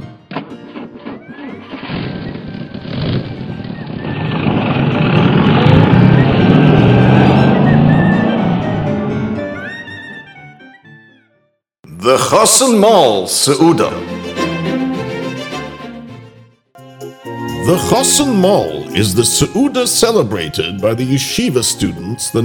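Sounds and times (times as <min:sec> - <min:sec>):
road rumble heard from inside the car: 0:00.7 - 0:10.2
car engine hum heard from inside the vehicle: 0:03.5 - 0:09.7
speech: 0:12.1 - 0:14.4, 0:17.7 - 0:22.4.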